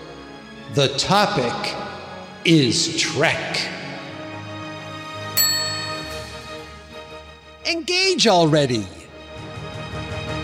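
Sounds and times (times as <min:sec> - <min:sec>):
speech: 0:00.7 - 0:01.8, 0:02.4 - 0:03.8, 0:07.7 - 0:09.0
bell ding: 0:05.4 - 0:06.9
faint steady tonal background: 0:05.4 - 0:06.9.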